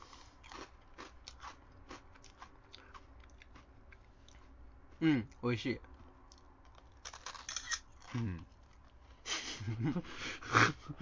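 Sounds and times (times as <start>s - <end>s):
biting into and chewing a carbonated rice cracker: 0.0s - 3.7s, 6.3s - 8.8s
speech: 5.0s - 5.9s, 8.2s - 8.5s, 9.7s - 10.9s.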